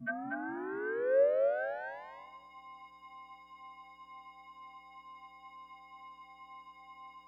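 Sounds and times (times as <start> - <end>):
synth: 0.0 - 2.3.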